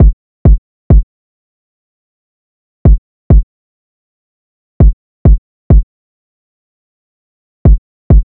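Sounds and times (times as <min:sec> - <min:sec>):
RnB kick drum loop: 0:00.0 - 0:01.0, 0:02.9 - 0:03.4, 0:04.8 - 0:05.8, 0:07.7 - 0:08.2.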